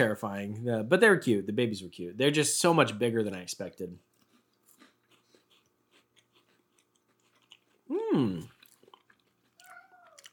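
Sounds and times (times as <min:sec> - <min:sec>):
speech: 0:00.0 - 0:04.1, 0:07.9 - 0:08.5
cat meowing: 0:09.6 - 0:10.3.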